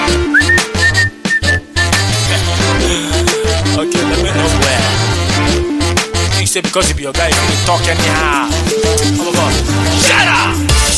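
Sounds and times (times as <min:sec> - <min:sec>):
busy musical backing with deep bass and percussion: 0:00.0 - 0:10.9
person whistling a melody: 0:00.2 - 0:02.2
speech: 0:06.6 - 0:10.7.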